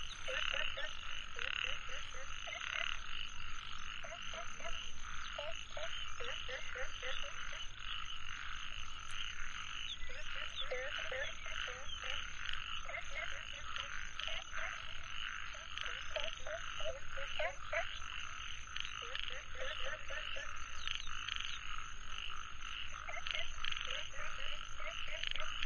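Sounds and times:
frogs croaking in a dense chorus: 0:00.0 - 0:25.6
insects buzzing and trilling: 0:00.0 - 0:25.6.

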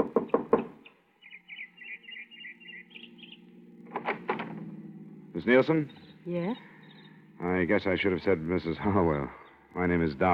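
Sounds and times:
sharp knocking on a wooden door: 0:00.0 - 0:00.8
faint birdsong chirping: 0:00.0 - 0:10.3
speech: 0:05.4 - 0:06.7, 0:07.4 - 0:10.3.

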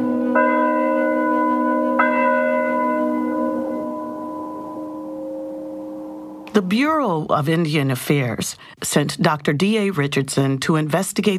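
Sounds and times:
church bell tolling: 0:00.0 - 0:06.6
speech: 0:06.6 - 0:11.3.

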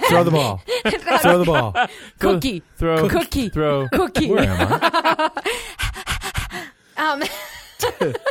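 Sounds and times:
laughter: 0:00.0 - 0:02.0, 0:03.0 - 0:05.6, 0:07.2 - 0:08.2
speech: 0:00.1 - 0:05.9, 0:07.0 - 0:08.2
person panting into a mic imitating a dog: 0:05.4 - 0:06.9.

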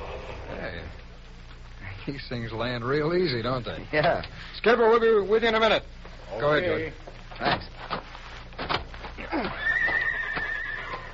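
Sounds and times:
speech: 0:02.0 - 0:07.9
horses neighing: 0:09.2 - 0:11.1.

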